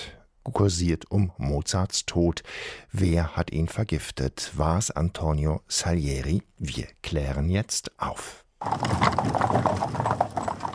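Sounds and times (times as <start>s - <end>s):
speech: 0.4s - 10.2s
hooves of a horse pulling a carriage clip-clopping over rough ground: 8.6s - 10.7s
horse-drawn carriage rattling over rough ground: 8.6s - 10.7s.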